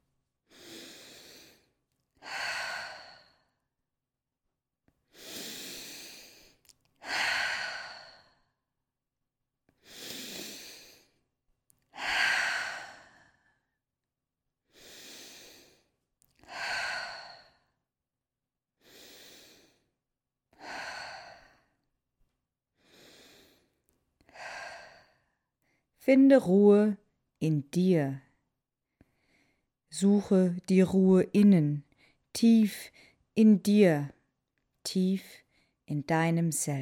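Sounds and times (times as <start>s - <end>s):
deep breathing in and out: 0.5s - 3.7s, 5.1s - 8.6s, 9.8s - 11.2s, 11.9s - 13.8s, 14.6s - 17.9s, 18.8s - 20.0s, 20.6s - 21.8s, 22.8s - 25.9s
speech: 26.1s - 28.2s, 29.9s - 34.2s, 34.8s - 36.8s.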